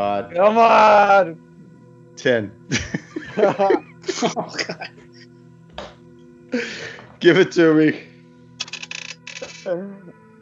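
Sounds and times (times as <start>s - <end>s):
speech: 0.0s - 1.5s, 2.2s - 5.1s, 6.5s - 8.1s, 9.6s - 10.2s
laughter: 2.7s - 5.2s
dice clattering across a hard table: 8.6s - 9.6s.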